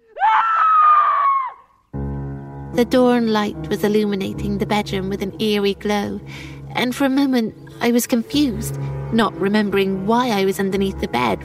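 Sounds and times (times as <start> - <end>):
person screaming: 0.0 - 1.7
speech: 2.8 - 11.4.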